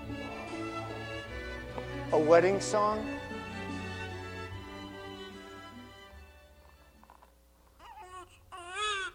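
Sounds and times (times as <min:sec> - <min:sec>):
newborn baby crying: 0:00.1 - 0:01.2, 0:06.8 - 0:09.1
speech: 0:02.1 - 0:03.2.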